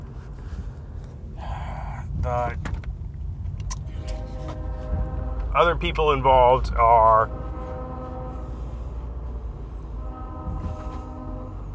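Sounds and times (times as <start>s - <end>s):
train wheels and cars rumbling through town: 1.2s - 11.7s
speech: 2.3s - 2.8s, 5.6s - 7.4s
train horn blaring: 3.7s - 11.7s.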